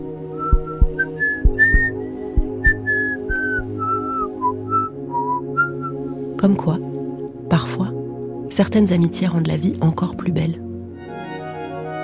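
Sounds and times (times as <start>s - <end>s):
light music with a steady low bass pulse: 0.0s - 12.0s
person whistling a cheerful melody: 0.3s - 6.0s
speech: 6.4s - 6.9s, 7.5s - 10.6s.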